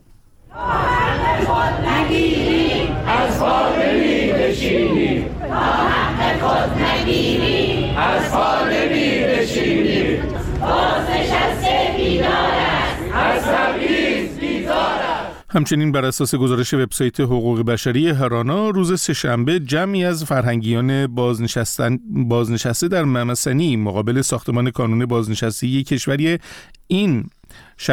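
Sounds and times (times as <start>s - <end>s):
group of protesters chanting slogans in Kermanshah: 0.5s - 15.5s
speech: 15.5s - 27.9s.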